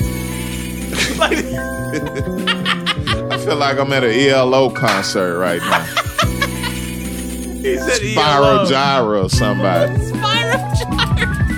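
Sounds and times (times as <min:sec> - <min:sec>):
chime-like tinkling tones resembling a wind chime: 0:00.0 - 0:03.2, 0:04.8 - 0:08.8
laughter: 0:00.9 - 0:04.2, 0:05.2 - 0:11.5
speech: 0:01.0 - 0:02.5, 0:03.4 - 0:06.0, 0:07.6 - 0:11.3.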